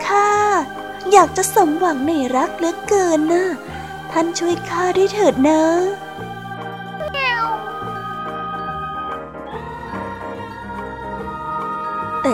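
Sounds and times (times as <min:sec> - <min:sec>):
musical backing with sustained low notes: 0:00.0 - 0:12.3
speech: 0:01.1 - 0:06.0
cat meowing: 0:07.0 - 0:07.7.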